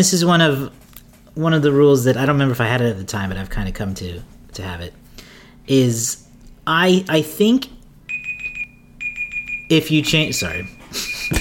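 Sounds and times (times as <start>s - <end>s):
speech: 0.0s - 0.8s, 1.4s - 5.0s, 5.6s - 7.8s, 9.7s - 11.4s
high-pitched electronic timer alarm beeping: 8.1s - 11.4s.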